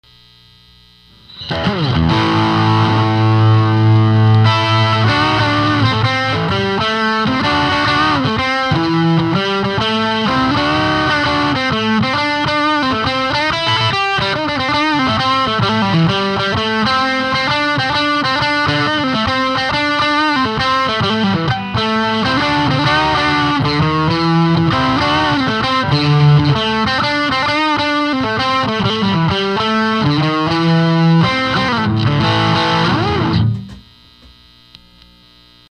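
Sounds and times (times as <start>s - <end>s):
Stratocaster electric guitar through EL34 Altec tube amplifier: 1.1s - 34.4s.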